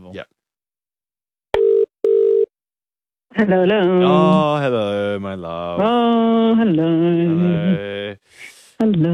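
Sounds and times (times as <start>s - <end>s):
speech: 0.1s - 0.4s, 3.4s - 9.1s
telephone ringing tone as a call goes through: 1.6s - 2.5s.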